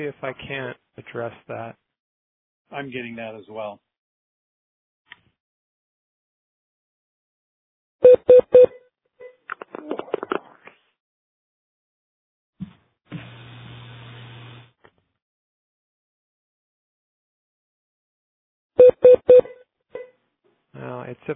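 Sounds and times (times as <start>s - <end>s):
speech: 0.0s - 1.8s, 2.7s - 3.9s, 20.8s - 21.3s
phone line on hold beeping: 8.0s - 8.8s, 18.8s - 20.1s.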